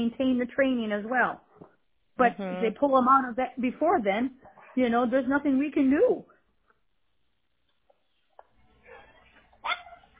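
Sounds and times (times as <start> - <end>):
speech: 0.0 - 1.5, 2.2 - 6.3
small dog giving high yappy barks: 8.8 - 10.1.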